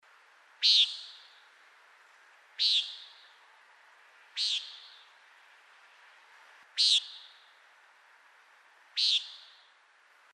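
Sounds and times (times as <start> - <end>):
nighthawk calling: 0.6 - 1.4, 2.6 - 3.3, 4.4 - 5.0, 6.8 - 7.4, 9.0 - 9.7.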